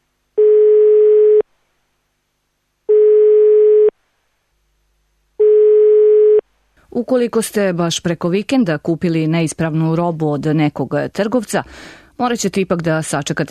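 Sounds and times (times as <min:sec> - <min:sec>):
long steady electronic ringing tones of an unanswered phone call: 0:00.4 - 0:01.4, 0:02.9 - 0:03.9, 0:05.4 - 0:06.4
speech: 0:07.0 - 0:13.5.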